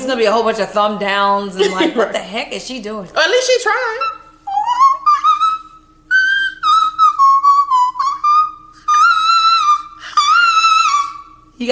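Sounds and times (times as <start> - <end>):
speech: 0.0 - 4.2, 11.6 - 11.7
person whistling a short melodic tune: 4.1 - 11.3.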